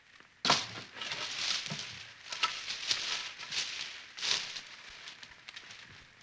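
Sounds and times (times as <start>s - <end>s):
nature sounds with grass: 0.0s - 6.2s.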